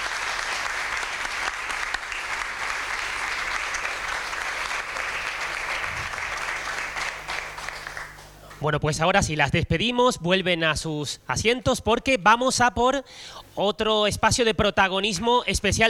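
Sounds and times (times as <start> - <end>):
audience applause: 0.0 - 8.6
speech: 8.6 - 15.8.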